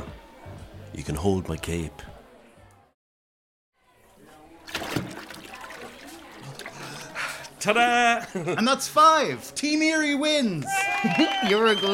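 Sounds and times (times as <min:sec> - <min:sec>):
speech: 0:01.0 - 0:02.2, 0:07.6 - 0:11.9
water sloshing and splashing in a basin: 0:04.6 - 0:07.2.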